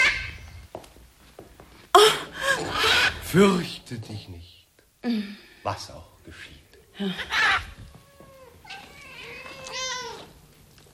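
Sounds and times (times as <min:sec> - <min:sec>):
cats meowing: 0:00.0 - 0:00.7, 0:02.4 - 0:03.3, 0:07.2 - 0:10.4
speech: 0:03.3 - 0:07.7.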